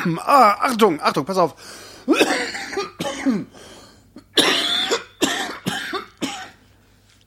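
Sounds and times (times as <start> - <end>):
speech: 0.0 - 2.6, 3.2 - 3.8
harsh coughing into an unmuted microphone: 2.0 - 3.6, 4.2 - 6.6.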